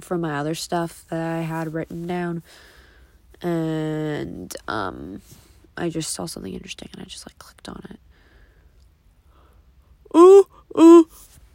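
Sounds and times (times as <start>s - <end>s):
speech: 0.0s - 2.8s, 3.4s - 8.1s, 10.1s - 11.3s
short voiced yawns: 10.1s - 11.1s.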